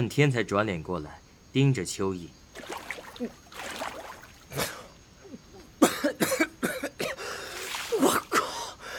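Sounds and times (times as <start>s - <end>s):
speech: 0.0s - 3.8s, 4.5s - 4.8s
person coughing and spluttering after nearly drowning: 4.4s - 4.8s, 5.8s - 8.6s.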